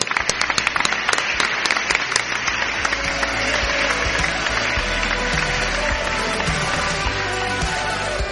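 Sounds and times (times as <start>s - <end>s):
applause from a large audience at a live-streamed event: 0.0s - 8.2s.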